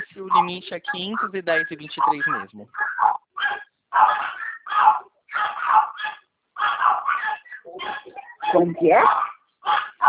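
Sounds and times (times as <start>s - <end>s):
speech: 0.2s - 3.1s, 8.5s - 9.3s
dog barking in quick yappy bursts: 2.0s - 10.0s.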